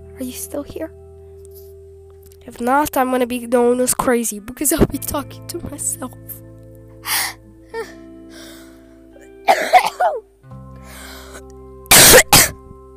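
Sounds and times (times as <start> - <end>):
speech: 0.2 - 1.0, 2.4 - 6.4
harsh coughs into a microphone: 9.5 - 10.2, 11.9 - 12.6.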